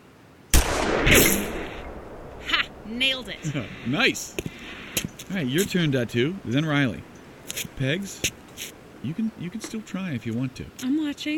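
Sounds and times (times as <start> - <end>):
rifle shot during shooting practice: 0.5 - 3.4
speech: 2.9 - 4.5, 5.3 - 11.3.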